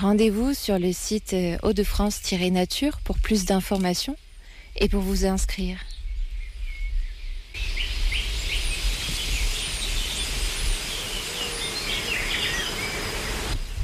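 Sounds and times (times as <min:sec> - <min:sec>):
speech: 0:00.0 - 0:04.2, 0:04.8 - 0:05.9
birds chirping and tweeting: 0:00.0 - 0:13.8
dense buzz of insects: 0:07.6 - 0:13.8.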